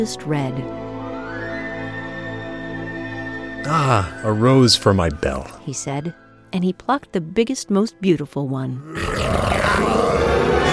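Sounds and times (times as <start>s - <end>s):
speech: 0.0s - 1.4s, 3.6s - 10.6s
terrifying angry beast roar: 8.8s - 10.7s.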